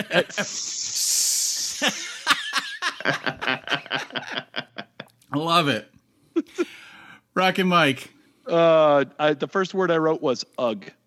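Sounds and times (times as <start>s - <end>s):
speech: 0.0s - 0.8s, 1.8s - 4.6s, 5.3s - 6.8s, 7.4s - 11.0s
person laughing and snickering: 0.0s - 5.1s
person hissing like a snake: 0.1s - 2.1s.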